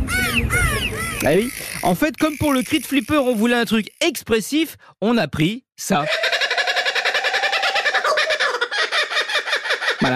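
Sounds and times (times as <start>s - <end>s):
kookaburra laughing call: 0.0s - 1.9s, 6.0s - 10.1s
speech: 1.2s - 6.3s.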